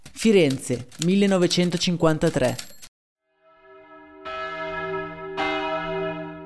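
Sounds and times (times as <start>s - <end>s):
speech: 0.2s - 2.7s
church bells tolling for a death: 3.6s - 6.4s.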